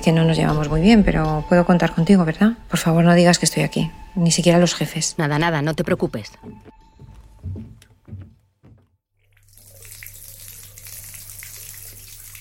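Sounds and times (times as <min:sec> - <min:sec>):
speech: 0:00.0 - 0:06.8
soft knocks and clunks: 0:06.4 - 0:09.0
shower water running in a steady hiss: 0:09.3 - 0:12.3.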